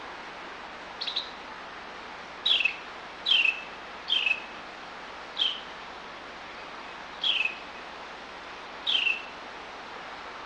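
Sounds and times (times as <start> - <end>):
soft steady background hiss: 0.0 - 10.4
bird calls of short sharp chirps sliding downward: 1.0 - 1.4, 2.4 - 4.5, 5.4 - 5.7, 7.2 - 7.6, 8.8 - 9.3.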